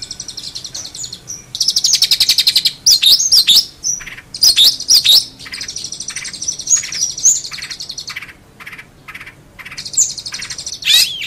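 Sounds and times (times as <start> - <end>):
long-tailed shrike song: 0.0 - 11.2.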